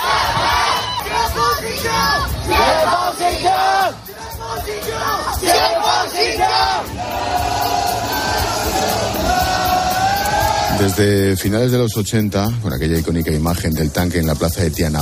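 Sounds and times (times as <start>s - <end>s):
large protest crowd in China chanting slogans against the Communist Party: 0.0s - 10.8s
speech: 10.8s - 14.9s.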